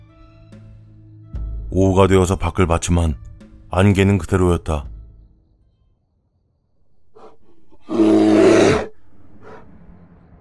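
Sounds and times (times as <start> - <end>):
speech: 1.7 - 4.9
brown bear roaring: 7.0 - 9.7.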